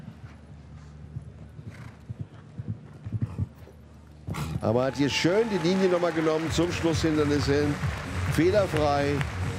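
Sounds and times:
galloping horse hoofbeats: 0:00.0 - 0:04.7
speech: 0:04.6 - 0:09.4.

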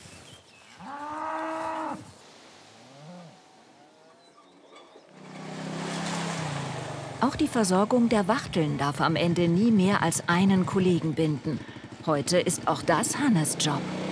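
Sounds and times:
cattle mooing while changing pasture: 0:00.8 - 0:02.1, 0:02.8 - 0:04.4
speech: 0:07.2 - 0:14.0.

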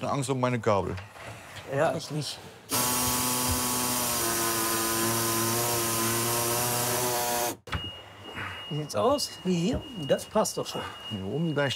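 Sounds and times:
speech: 0:00.0 - 0:02.8, 0:08.7 - 0:11.7
power saw cutting through a sheet metal panel: 0:02.7 - 0:07.6.

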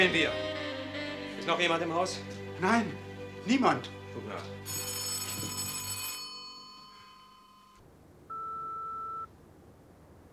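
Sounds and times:
speech: 0:00.0 - 0:00.5, 0:01.5 - 0:04.8
electronic telephone ringing at night: 0:04.7 - 0:09.3.

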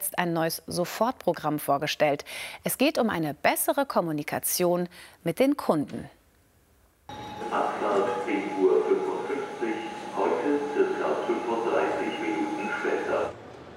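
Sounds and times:
speech: 0:00.1 - 0:06.2, 0:07.1 - 0:08.5
faint chime-like tone: 0:07.1 - 0:13.3
indistinct crowd chatter at Hannover main railway station: 0:07.1 - 0:13.3
rail noise: 0:07.1 - 0:13.7.

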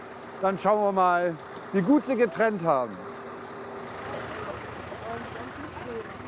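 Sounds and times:
garbage truck engine rumbling while driving at a festival: 0:00.0 - 0:06.2
speech: 0:00.4 - 0:03.1
faint indistinct voices: 0:02.1 - 0:06.2.

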